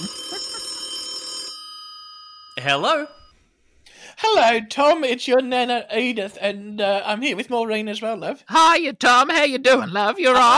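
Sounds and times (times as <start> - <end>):
telephone line ringing as a dialed call goes through: 0.0 - 3.3
speech: 2.6 - 3.2, 4.2 - 10.5.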